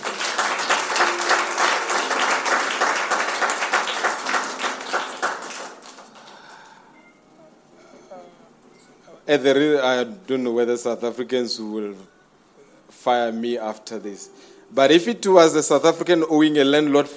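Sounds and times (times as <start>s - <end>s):
audience clapping during a sermon: 0.0s - 7.0s
speech: 9.3s - 12.2s, 13.0s - 17.1s.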